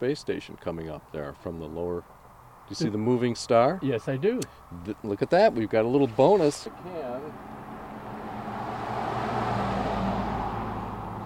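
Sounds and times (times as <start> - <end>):
speech: 0.0 - 7.6
car driving past with road rumble: 6.7 - 11.2.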